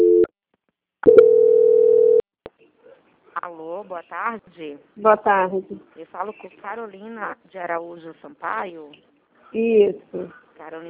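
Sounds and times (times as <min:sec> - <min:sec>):
call transfer tone on a bank quality-control phone line: 0:01.1 - 0:02.2
speech: 0:03.4 - 0:10.8.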